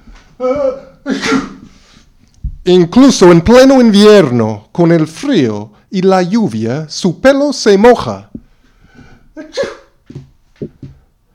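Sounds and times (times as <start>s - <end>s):
cat with a very red nose sneezing: 1.1s - 1.8s, 9.4s - 10.0s
speech: 2.6s - 8.3s, 9.4s - 9.8s.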